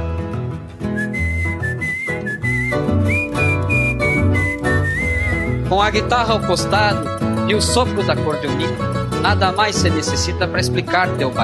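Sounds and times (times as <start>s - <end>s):
instrumental backing with steady bass and chords: 0.0s - 11.4s
person whistling a melody: 0.9s - 5.7s
speech: 5.8s - 11.4s.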